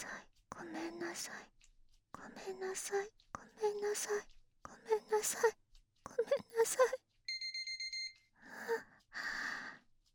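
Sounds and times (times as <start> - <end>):
speech: 1.2 - 1.6, 2.2 - 5.6, 6.2 - 7.0
kitchen timer alarm electronic beeps: 7.3 - 8.2.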